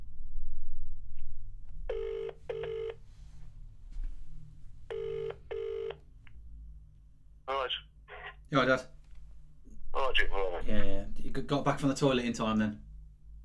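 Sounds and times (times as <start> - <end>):
telephone ringing: 1.9 - 3.0, 4.9 - 6.0
speech: 8.5 - 9.0, 10.2 - 12.9.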